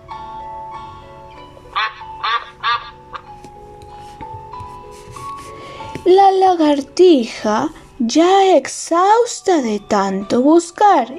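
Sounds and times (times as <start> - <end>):
soft steady music: 0.0 - 11.1
duck quacking: 1.8 - 3.3
speech: 6.1 - 11.1.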